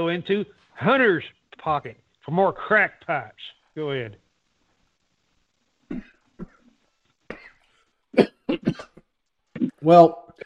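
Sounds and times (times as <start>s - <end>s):
speech: 0.0s - 4.2s, 5.9s - 6.5s, 8.2s - 8.9s, 9.8s - 10.2s
person coughing after coffee went down the wrong way: 5.9s - 6.7s, 7.3s - 7.6s, 8.2s - 9.0s.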